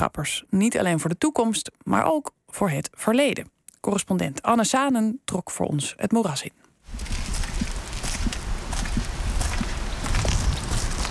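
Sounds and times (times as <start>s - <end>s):
speech: 0.0s - 7.2s
footsteps walking along a 2000-year-old stone border wall: 6.9s - 11.1s
constant rushing noise: 7.0s - 11.1s.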